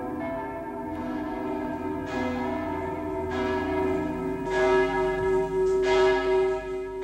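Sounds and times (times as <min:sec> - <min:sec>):
church bells ringing: 0:00.0 - 0:07.0.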